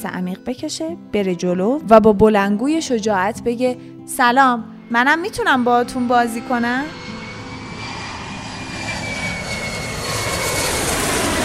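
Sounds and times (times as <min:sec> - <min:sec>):
speech: 0:00.0 - 0:07.0
airplane engine roar in the cabin during descent: 0:04.6 - 0:11.4
faint high whine: 0:04.8 - 0:11.4.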